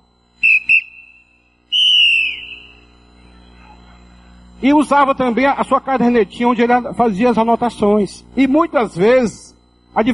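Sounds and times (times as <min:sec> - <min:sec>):
referee's whistle blasts: 0:00.4 - 0:03.0
speech: 0:04.6 - 0:10.1.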